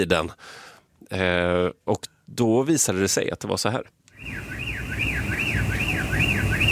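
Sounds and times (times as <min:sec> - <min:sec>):
speech: 0:00.0 - 0:04.6
common blackbird imitating a car alarm in Gothenburg: 0:04.2 - 0:06.7
low rumble of traffic in Gothenburg: 0:04.2 - 0:06.7.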